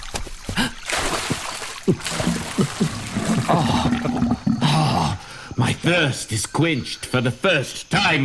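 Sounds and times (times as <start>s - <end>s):
small water splashes: 0.0s - 4.1s
spring water trickling and bubbling: 0.0s - 4.8s
speech: 1.9s - 4.2s, 5.8s - 8.2s.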